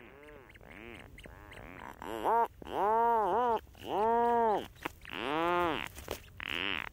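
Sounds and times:
rhinoceros auklets and chicks calling on an island wildlife refuge in the Strait of Juan de Fuca: 0.0 - 6.9.

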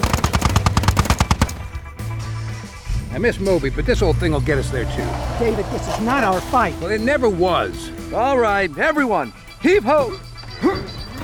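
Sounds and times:
chain gun firing: 0.0 - 1.8
speech: 3.2 - 10.9
low steady rumble: 3.8 - 9.0.

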